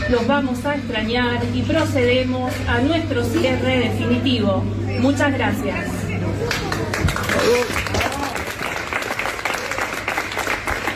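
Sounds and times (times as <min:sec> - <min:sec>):
low hum: 0:00.0 - 0:10.9
speech: 0:00.1 - 0:06.0, 0:07.4 - 0:07.9
customers and workers clapping in a hypermarket: 0:06.4 - 0:10.9.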